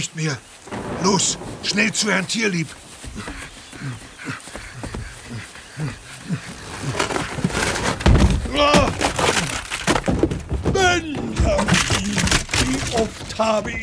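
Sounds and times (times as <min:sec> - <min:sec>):
speech: 0:00.0 - 0:04.4, 0:05.8 - 0:07.0, 0:13.0 - 0:13.8
voices chattering: 0:00.0 - 0:13.8
elephant crashing through a wooden door: 0:00.5 - 0:04.0, 0:06.5 - 0:13.8
elephant bellowing and trumpeting: 0:00.7 - 0:09.1.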